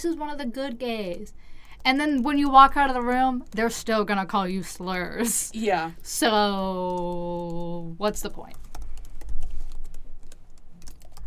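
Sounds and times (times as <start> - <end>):
speech: 0.0 - 8.6
rapid typing on a computer keyboard: 0.7 - 4.1, 6.0 - 11.2.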